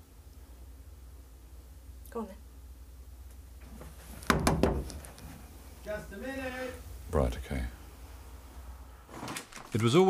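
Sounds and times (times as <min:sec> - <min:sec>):
speech: 0:02.1 - 0:02.4, 0:05.9 - 0:07.8, 0:09.7 - 0:10.0
knocking on a thick heavy door: 0:04.3 - 0:04.9.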